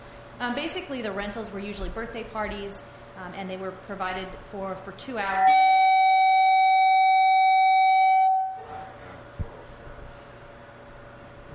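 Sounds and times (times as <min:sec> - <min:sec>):
low rumbling noise: 0:00.0 - 0:05.8, 0:07.5 - 0:11.5
speech: 0:00.4 - 0:05.8
loud steady siren tone: 0:05.4 - 0:08.8.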